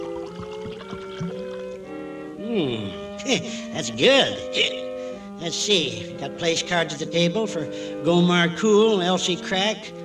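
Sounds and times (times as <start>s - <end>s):
fermented kumquat juice and rainwater punch poured from a punch bowl: 0.0s - 1.9s
speech: 2.6s - 4.8s, 5.4s - 10.0s.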